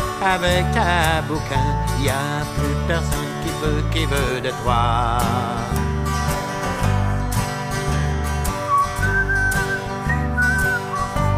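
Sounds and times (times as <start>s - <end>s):
full musical backing with steady bass: 0.0s - 11.3s
speech: 0.2s - 5.9s
person whistling a bright wavering melody: 8.6s - 11.3s.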